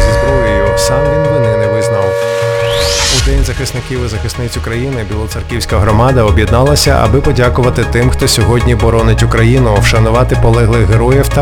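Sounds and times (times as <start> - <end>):
air raid siren: 0.0 - 5.0
person making an announcement: 0.0 - 11.3
speech: 3.6 - 11.3.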